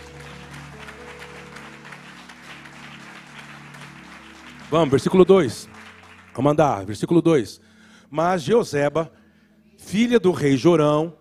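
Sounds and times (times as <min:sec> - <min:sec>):
audience clapping: 0:00.0 - 0:07.1
speech: 0:04.7 - 0:05.8, 0:06.4 - 0:09.2, 0:09.8 - 0:11.1.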